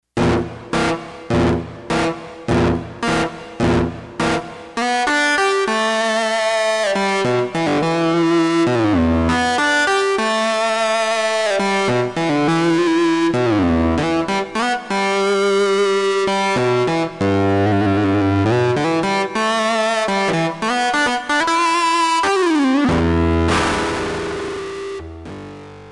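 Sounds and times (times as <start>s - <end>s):
distorted guitar: 0.0s - 25.9s.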